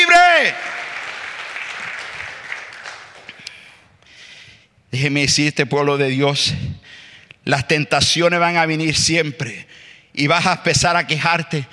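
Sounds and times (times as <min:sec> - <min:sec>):
crowd applauding loudly in a large room: 0:00.0 - 0:03.7
speech: 0:04.9 - 0:11.7.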